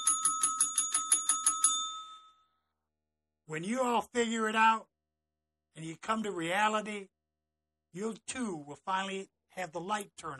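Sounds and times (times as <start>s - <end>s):
bright metallic bell ringing rapidly: 0.0s - 2.4s
speech: 3.5s - 4.9s, 5.8s - 7.2s, 7.9s - 10.3s.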